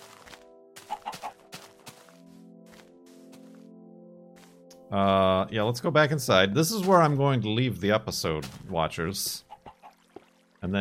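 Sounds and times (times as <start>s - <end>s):
hens clucking while laying eggs: 0.8s - 1.4s, 9.4s - 10.0s
speech: 4.9s - 9.5s.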